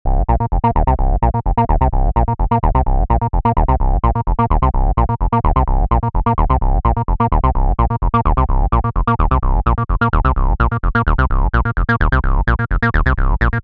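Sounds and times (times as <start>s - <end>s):
simple bass: 0.0s - 13.6s.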